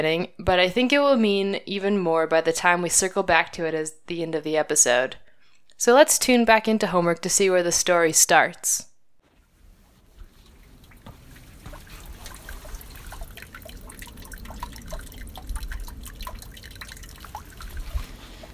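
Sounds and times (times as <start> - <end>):
speech: 0.0 - 5.2, 5.8 - 8.9
water dripping through the grates of a cattle guard: 10.1 - 18.5.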